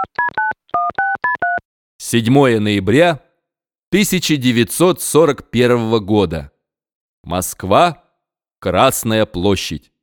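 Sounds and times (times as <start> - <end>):
electronic keypad tones from a time machine being set to a date: 0.0 - 1.6
speech: 2.1 - 3.2, 3.9 - 6.5, 7.2 - 8.0, 8.6 - 9.9.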